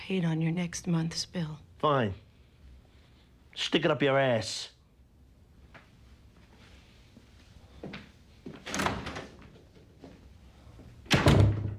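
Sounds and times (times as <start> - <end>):
speech: 0.1 - 2.3, 3.6 - 4.8
door pulled shut: 8.6 - 9.6, 11.0 - 11.7.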